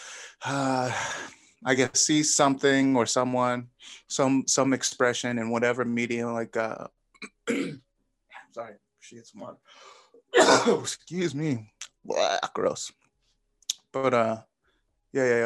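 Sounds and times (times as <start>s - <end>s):
speech: 0.4s - 7.8s, 8.5s - 13.0s, 14.0s - 14.5s, 15.1s - 15.4s
person clearing throat: 7.2s - 7.8s, 10.4s - 11.0s
person coughing: 7.2s - 7.8s, 10.4s - 11.0s.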